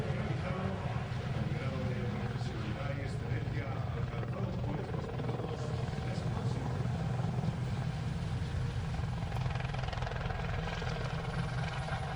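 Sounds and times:
voices talking: 0.0s - 6.8s
helicopter maneuvering at an air show: 0.0s - 12.1s.

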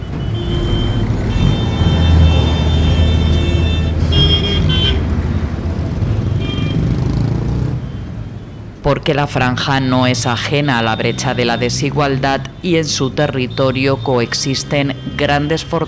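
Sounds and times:
car horns honking: 0.0s - 5.4s, 6.1s - 7.2s, 10.1s - 15.8s
dense street traffic rumbling: 0.0s - 15.8s
speech: 8.9s - 15.8s.

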